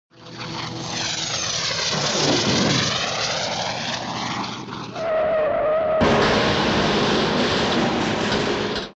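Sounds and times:
aircraft crash: 0:00.2 - 0:08.9.

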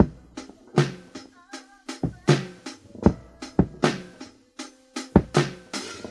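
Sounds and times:
badly filtered boombap drum loops: 0:00.0 - 0:06.1.

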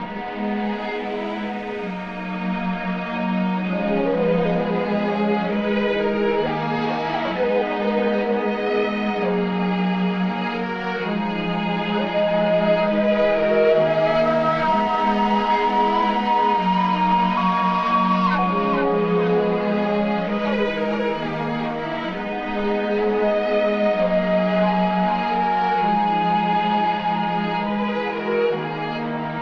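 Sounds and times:
sad string music loop: 0:00.0 - 0:29.4.

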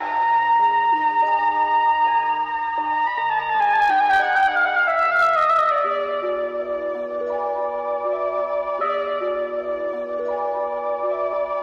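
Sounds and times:
flute loop: 0:00.0 - 0:11.6.

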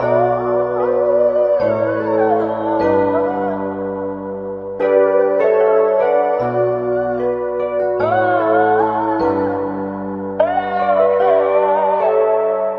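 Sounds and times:
sad mystical voice: 0:00.0 - 0:04.2, 0:04.8 - 0:12.7
sad mystical keyboard loop: 0:00.0 - 0:12.7.

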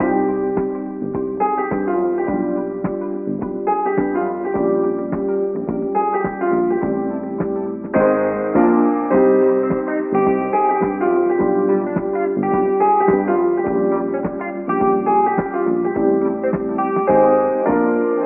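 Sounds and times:
guitar: 0:00.0 - 0:18.2
piano: 0:00.0 - 0:18.2.

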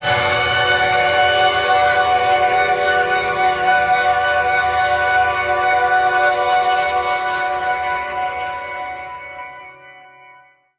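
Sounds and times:
long electric fanfare note: 0:00.0 - 0:07.6.

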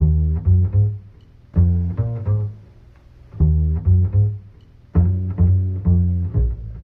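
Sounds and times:
jazz bass loops: 0:00.0 - 0:06.8.

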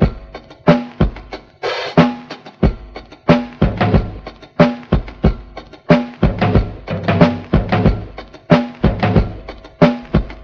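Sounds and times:
funky war drum loop: 0:00.0 - 0:10.4.

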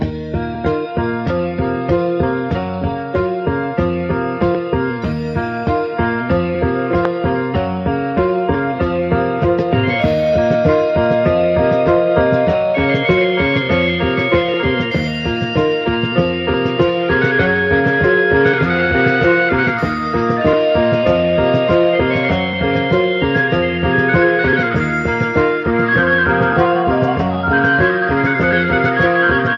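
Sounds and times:
piano loop: 0:00.0 - 0:29.5
flute loop: 0:05.1 - 0:29.5.

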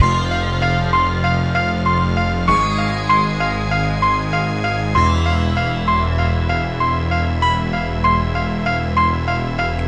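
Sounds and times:
sad Halloween piano loop: 0:00.0 - 0:09.8.

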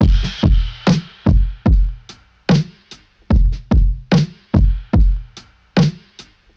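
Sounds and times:
boom bap drum loops: 0:00.0 - 0:06.5.

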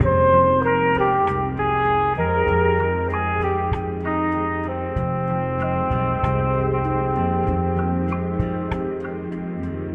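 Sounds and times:
horns: 0:00.0 - 0:09.2.

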